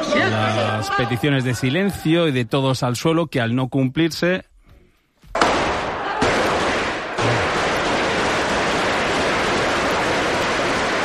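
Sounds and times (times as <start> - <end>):
speech: 0.2 - 4.5
gunfire in a parliament chamber: 5.4 - 11.0.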